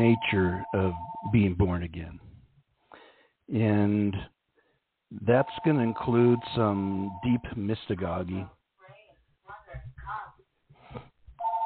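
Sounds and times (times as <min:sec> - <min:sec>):
telephone ringing with electronic ring tone: 0:00.0 - 0:01.4, 0:05.4 - 0:07.4, 0:11.4 - 0:11.6
speech: 0:00.0 - 0:02.3, 0:03.5 - 0:04.3, 0:05.1 - 0:08.6.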